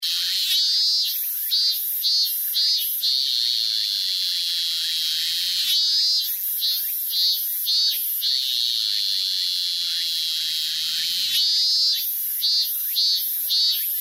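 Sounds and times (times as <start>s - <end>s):
robust cicada singing: 0.0s - 13.9s.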